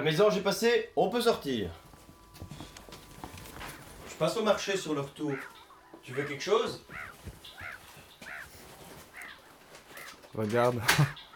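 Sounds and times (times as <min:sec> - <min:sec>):
speech: 0:00.0 - 0:01.8, 0:04.2 - 0:07.4, 0:10.3 - 0:11.2
low murmur: 0:01.6 - 0:10.6
seagulls squawking: 0:01.8 - 0:11.3.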